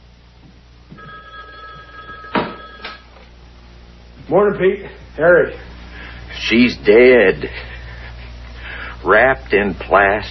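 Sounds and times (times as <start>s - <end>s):
black telephone bell ringing: 1.0s - 3.0s
speech: 4.3s - 5.7s, 6.4s - 7.7s, 9.0s - 10.3s.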